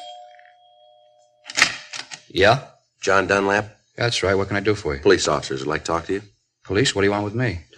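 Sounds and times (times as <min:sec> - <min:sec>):
apartment electronic doorbell ringing: 0:00.0 - 0:01.5
speech: 0:02.3 - 0:07.7.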